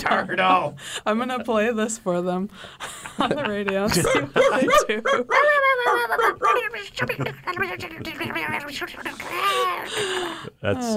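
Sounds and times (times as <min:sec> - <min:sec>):
speech: 0:00.0 - 0:10.9
laughter: 0:02.8 - 0:10.5
dog barking: 0:04.0 - 0:06.7.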